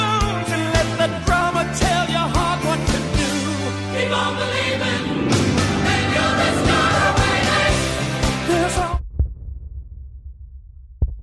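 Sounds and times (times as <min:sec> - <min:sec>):
brief burst of music: 0:00.0 - 0:09.0.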